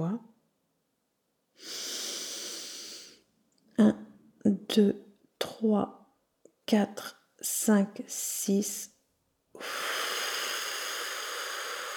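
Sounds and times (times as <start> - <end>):
long slow exhalation during a breathing exercise: 1.6 - 3.2, 9.6 - 11.9
speech: 3.8 - 6.0, 6.7 - 8.9.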